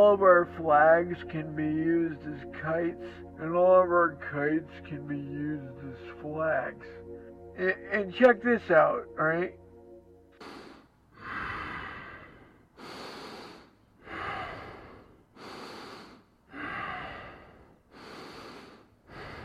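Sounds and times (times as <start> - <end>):
speech: 0.0 - 7.0, 7.6 - 9.6
person breathing heavily while asleep with snoring: 10.4 - 19.4.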